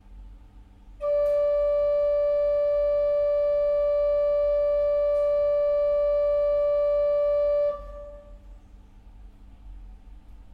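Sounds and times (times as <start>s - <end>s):
flute: 1.0s - 8.5s.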